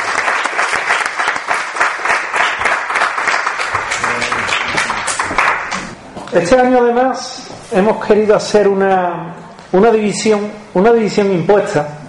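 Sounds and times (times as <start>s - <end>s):
audience applause at an awards presentation: 0.0s - 6.0s
speech: 6.3s - 12.0s.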